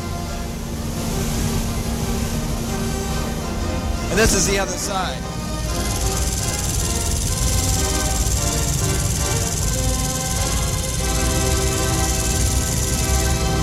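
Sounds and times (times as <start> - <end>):
organ blower motors droning in the blower room: 0.0 - 13.6
speech: 4.2 - 5.3.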